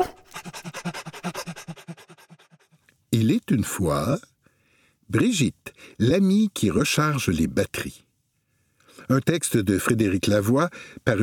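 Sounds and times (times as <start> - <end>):
dog panting: 0.0 - 2.8
speech: 3.2 - 4.3, 5.1 - 8.0, 9.1 - 11.2.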